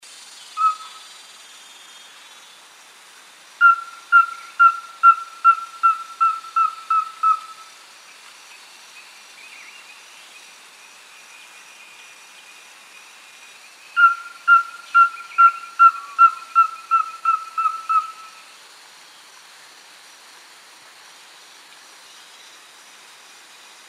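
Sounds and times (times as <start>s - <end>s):
Rusty-belted tapaculo calling: 0.6s - 1.2s, 3.6s - 7.7s, 14.0s - 18.5s.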